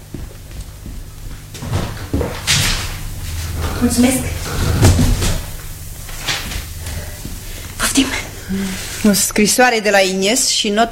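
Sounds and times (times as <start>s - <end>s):
low steady hum: 0.0s - 10.8s
brief airy scrape of a door being opened: 1.6s - 9.2s
speech: 3.8s - 4.6s, 8.0s - 10.8s.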